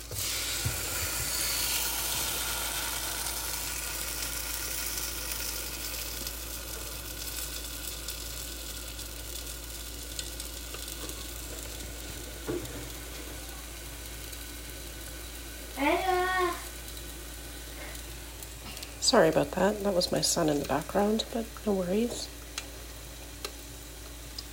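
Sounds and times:
waffle batter sizzling inside a closed waffle iron: 0:00.0 - 0:24.5
speech: 0:19.1 - 0:22.4.

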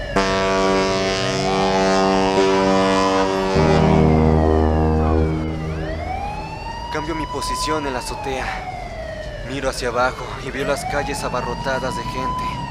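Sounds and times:
deep sustained ship horns blaring as boats leave a port dock: 0:00.1 - 0:06.9
speech: 0:07.1 - 0:08.7, 0:09.5 - 0:12.6.

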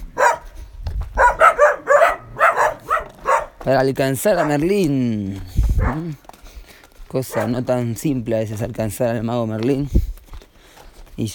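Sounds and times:
dogs barking in sharp loud yaps: 0:00.0 - 0:03.7, 0:04.3 - 0:04.7, 0:05.8 - 0:06.1, 0:07.2 - 0:07.8
speech: 0:03.6 - 0:06.3, 0:07.1 - 0:10.1, 0:11.2 - 0:11.3.

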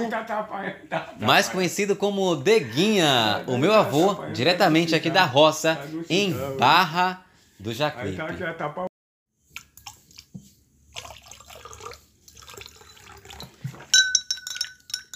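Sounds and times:
speech: 0:00.1 - 0:08.9
hot cafezinho coffee poured into a cup in Barra do Jacuípe: 0:10.9 - 0:15.1
bright ceramic cup clinking: 0:11.7 - 0:15.1.

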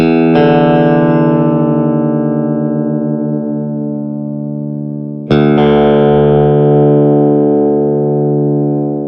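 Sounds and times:
electric guitar low E and open D strings struck together during tuning: 0:00.0 - 0:09.0.

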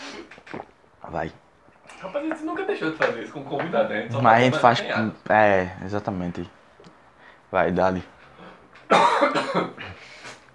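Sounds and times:
speech: 0:01.1 - 0:01.4, 0:02.0 - 0:06.6, 0:07.5 - 0:08.2, 0:08.9 - 0:10.2
person coughing: 0:08.9 - 0:10.0.

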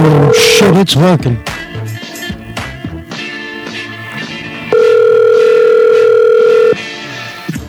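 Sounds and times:
outgoing-call telephone tone: 0:00.0 - 0:00.8, 0:04.7 - 0:06.8
speech: 0:00.0 - 0:01.5
busy music: 0:00.0 - 0:07.6.

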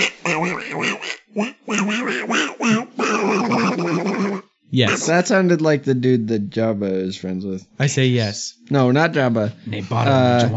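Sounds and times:
speech: 0:00.0 - 0:02.4, 0:04.8 - 0:10.5
person doing a loud cartoon duck voice impression: 0:00.0 - 0:05.2.

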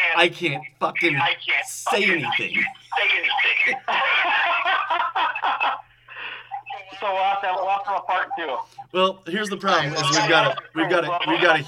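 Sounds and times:
voice over tinny phone line with heavy echo: 0:00.0 - 0:04.2, 0:06.6 - 0:08.7, 0:09.7 - 0:11.6
laughter: 0:00.0 - 0:08.6, 0:09.7 - 0:11.6
speech: 0:00.2 - 0:03.9, 0:07.0 - 0:11.6.

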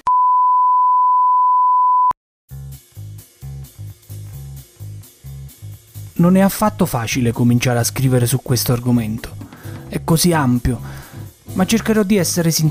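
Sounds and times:
loud steady electronic beep tone: 0:00.0 - 0:02.2
rhythmic music with a pulsing bass beat: 0:02.5 - 0:12.6
speech: 0:06.2 - 0:12.6.

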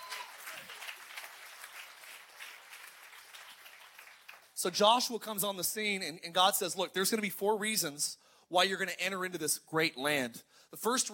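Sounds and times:
audience clapping in a large room: 0:00.0 - 0:04.8
speech: 0:04.6 - 0:11.1.

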